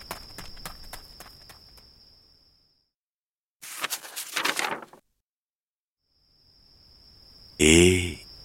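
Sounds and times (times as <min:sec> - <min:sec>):
person running on a gravel road at night: 0:00.0 - 0:01.9
speech: 0:07.6 - 0:08.2.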